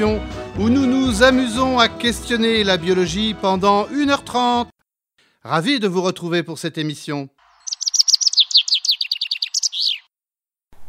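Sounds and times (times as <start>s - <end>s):
speech: 0.0s - 4.7s, 5.4s - 7.4s
white-throated dipper chirping ending in a buzzy trill: 7.6s - 10.1s.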